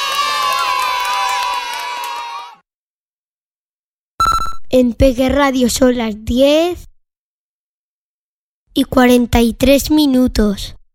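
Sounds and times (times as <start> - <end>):
children cheering and clapping: 0.0 - 2.6
speech: 4.7 - 6.9, 8.8 - 10.8.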